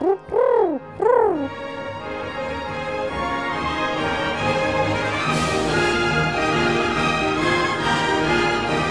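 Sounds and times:
pigeons cooing: 0:00.0 - 0:01.5
sustained orchestral music: 0:00.0 - 0:08.8.

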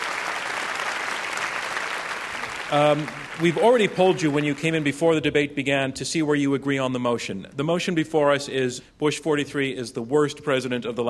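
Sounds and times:
large audience applause: 0:00.0 - 0:05.0
speech: 0:02.7 - 0:11.0.

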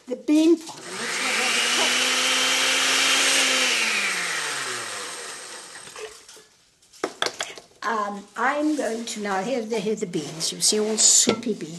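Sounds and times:
speech: 0:00.1 - 0:00.9, 0:08.1 - 0:11.7
old electric blender blending chiles and garlic: 0:00.7 - 0:06.2.

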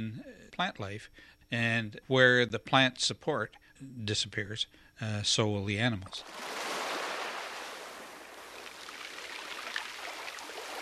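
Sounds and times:
speech: 0:00.0 - 0:06.7
soft waves washing onto the beach of Saxe Harbor: 0:06.2 - 0:10.8.

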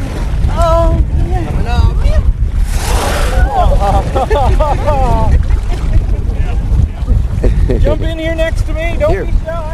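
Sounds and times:
steady boat and wind rumble: 0:00.0 - 0:09.7
whale exhaling through its blowhole beside a boat: 0:02.5 - 0:04.0
laughter: 0:03.3 - 0:06.3, 0:07.3 - 0:08.0
speech: 0:08.5 - 0:09.7.

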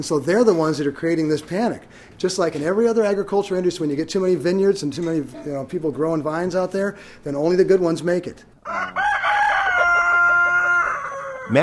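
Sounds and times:
speech: 0:00.0 - 0:09.1, 0:11.5 - 0:11.6
rooster crowing on an organic farm near Ukiah: 0:08.6 - 0:11.6.

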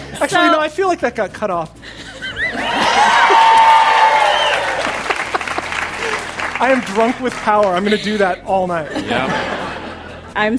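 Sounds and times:
speech: 0:00.1 - 0:02.8, 0:06.6 - 0:09.6, 0:10.4 - 0:10.5
laughter: 0:01.8 - 0:03.7, 0:04.7 - 0:10.5
loud crowd cheering with whoops: 0:02.5 - 0:07.8
crowd clapping: 0:02.7 - 0:07.9.

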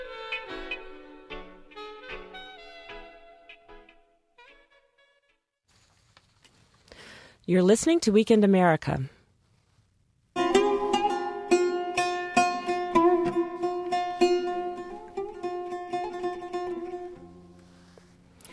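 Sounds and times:
speech: 0:07.4 - 0:09.2
plucked notes of an oud from Iraq played solo: 0:10.4 - 0:18.5.

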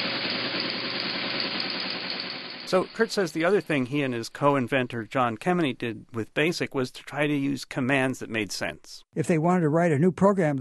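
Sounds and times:
early teletype machine printing out information from a remote computer: 0:00.0 - 0:03.8
speech: 0:02.7 - 0:10.5.

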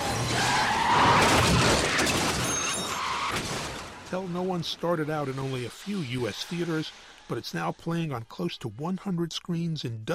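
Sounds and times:
tires screeching in a skid during a car chase: 0:00.0 - 0:07.4
speech: 0:04.1 - 0:10.1.

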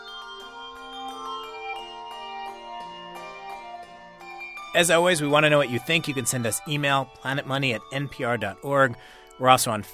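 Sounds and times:
handbell choir ringing Schulmerich and Malmark bells: 0:00.0 - 0:09.9
speech: 0:04.7 - 0:09.9.

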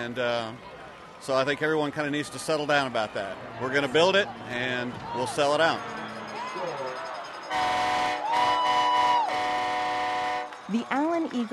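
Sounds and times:
speech: 0:00.0 - 0:06.0, 0:10.7 - 0:11.5
train horn blasts at a high school football stadium: 0:07.5 - 0:10.6.

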